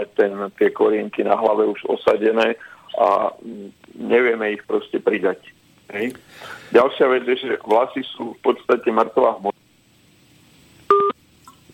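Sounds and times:
speech: 0.1s - 9.5s
steady dual-pitched telephone line beep: 10.9s - 11.2s.

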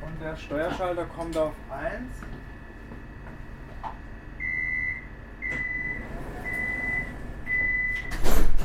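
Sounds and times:
speech: 0.2s - 2.5s
door pushed shut: 5.4s - 8.6s.

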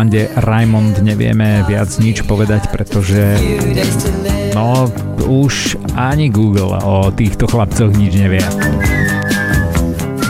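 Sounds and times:
speech: 0.0s - 9.0s
pop backing of drums, bass and chords: 0.0s - 10.2s
clear whistled melody in a pop song: 8.4s - 10.2s.

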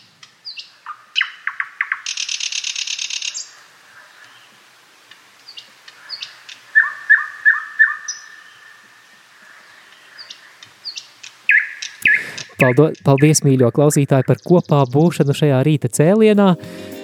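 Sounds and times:
nightingale singing: 0.0s - 3.6s, 5.4s - 9.0s, 9.6s - 15.5s
speech: 12.6s - 16.9s.

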